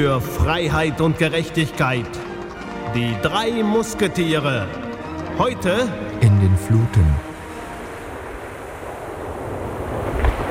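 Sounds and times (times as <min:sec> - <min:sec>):
speech: 0:00.0 - 0:02.3, 0:02.9 - 0:04.8, 0:05.4 - 0:07.3
ocean waves breaking: 0:07.2 - 0:10.4.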